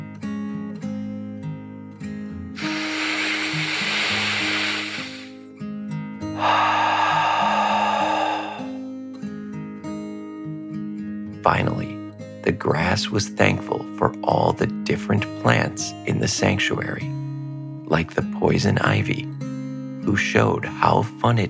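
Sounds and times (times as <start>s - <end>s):
steady music: 0.0s - 21.4s
deep breath in and out in a guided meditation: 2.6s - 5.4s, 6.3s - 8.9s
speech: 11.4s - 11.9s, 12.5s - 17.2s, 17.9s - 19.4s, 20.1s - 21.4s.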